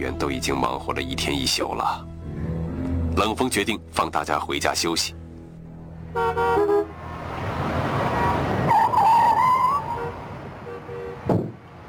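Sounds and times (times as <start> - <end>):
speech: 0.0 - 2.1, 3.2 - 5.2
steady road rumble: 0.0 - 11.8
car driving up to an office building: 5.2 - 11.8
car horn short toots: 6.2 - 6.9, 8.7 - 11.4.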